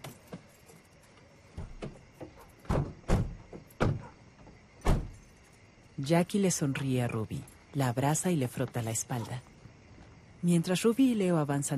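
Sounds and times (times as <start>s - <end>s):
car doors opening and thumping shut: 2.6s - 4.2s, 4.8s - 5.2s
speech: 6.0s - 9.5s, 10.4s - 11.7s.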